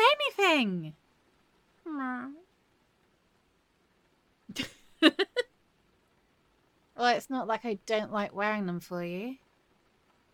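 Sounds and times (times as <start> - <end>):
speech: 0.4 - 1.0, 2.0 - 2.4, 7.0 - 9.4
person imitating a cat meow: 1.9 - 2.4.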